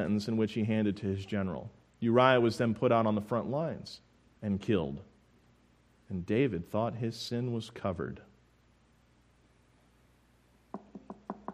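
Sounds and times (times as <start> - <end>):
speech: 0.0 - 5.1, 6.1 - 8.3
sharp knocking on a door: 10.7 - 11.5.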